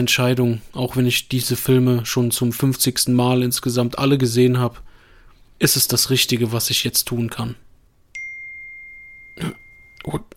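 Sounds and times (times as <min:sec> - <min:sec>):
speech: 0:00.0 - 0:04.9, 0:05.6 - 0:07.7, 0:09.4 - 0:10.3
phone notification ding: 0:08.1 - 0:10.2.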